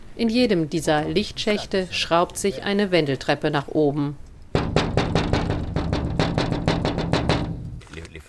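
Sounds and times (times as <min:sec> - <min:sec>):
speech: 0:00.2 - 0:04.2
knocking on a glass window pane: 0:04.5 - 0:07.8.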